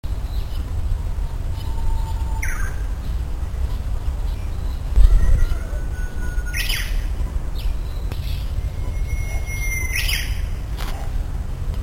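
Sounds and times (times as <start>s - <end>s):
uguisu bush warbler singing: 0.1s - 10.9s.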